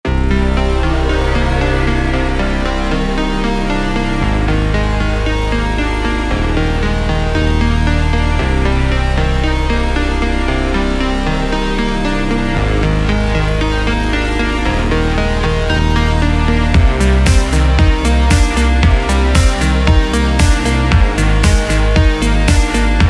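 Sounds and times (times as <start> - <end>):
backing track music: 0.1 - 23.0.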